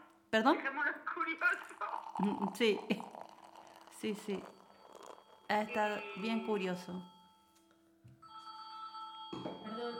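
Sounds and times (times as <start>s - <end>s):
speech: 0.3s - 3.2s, 4.0s - 4.6s, 5.5s - 7.1s
telephone ringing with an incoming call: 3.1s - 9.9s.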